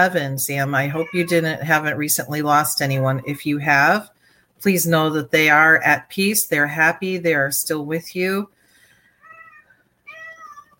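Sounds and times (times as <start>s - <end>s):
speech: 0.0s - 8.6s
male pet cat meowing: 0.8s - 1.8s, 2.9s - 3.5s, 9.2s - 10.7s.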